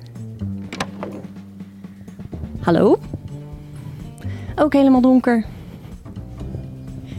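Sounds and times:
office door latch click: 0.7s - 1.3s
speech: 2.6s - 3.2s, 4.6s - 5.6s.

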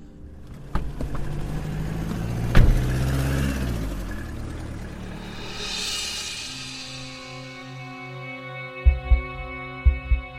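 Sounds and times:
car engine rumbling and pulling away: 0.0s - 8.0s.

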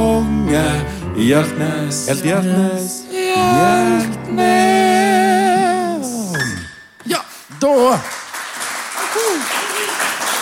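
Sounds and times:
speech: 0.8s - 4.7s, 7.1s - 8.2s
person whooping: 3.1s - 6.6s, 9.1s - 10.0s
room full of people applauding: 7.8s - 10.4s.

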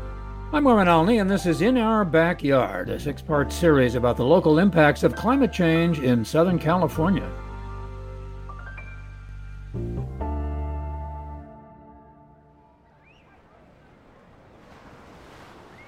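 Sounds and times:
sustained musical tones: 0.0s - 13.0s
speech: 0.5s - 7.5s
ocean waves breaking on shore: 12.9s - 15.8s.

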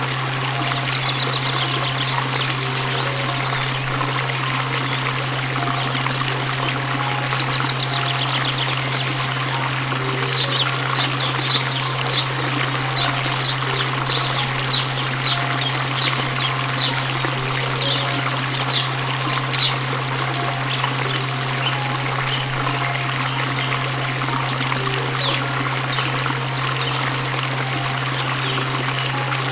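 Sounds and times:
water splashing and pouring: 0.0s - 29.5s
quick high bird chirps: 0.5s - 23.9s.

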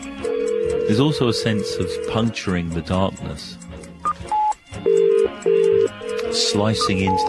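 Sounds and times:
steady telephone tones from a call to a phone box: 0.2s - 1.0s, 4.0s - 7.2s
speech: 0.9s - 3.6s, 6.4s - 7.2s
short electronic telephone beeps: 6.8s - 7.2s.

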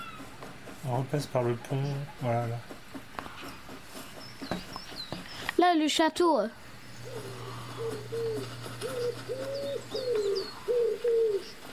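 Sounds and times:
speech: 0.8s - 2.7s, 5.7s - 7.4s
pigeon cooing: 7.0s - 11.7s.

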